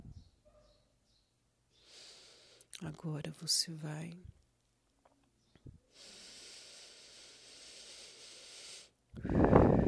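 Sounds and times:
deep breath in during a breathing exercise: 0:01.8 - 0:02.7, 0:05.9 - 0:09.8
speech: 0:02.8 - 0:04.4
forceful exhale during a breathing exercise: 0:05.9 - 0:09.8.

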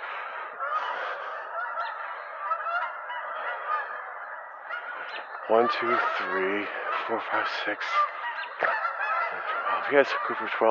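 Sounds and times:
Canada geese honking while flying overhead in V formation: 0:00.0 - 0:10.7
speech: 0:05.1 - 0:08.8, 0:09.7 - 0:10.7.

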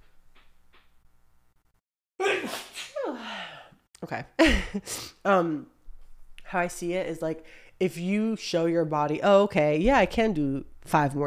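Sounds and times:
person sneezing: 0:02.2 - 0:03.7
speech: 0:04.0 - 0:05.8, 0:06.5 - 0:11.2
breathy inhales: 0:07.4 - 0:07.8.

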